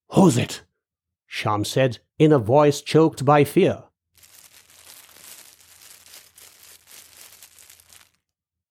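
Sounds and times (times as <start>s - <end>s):
speech: 0.1s - 0.7s, 1.3s - 3.9s
crinkly rustling made by someone moving near a bed: 4.2s - 8.3s.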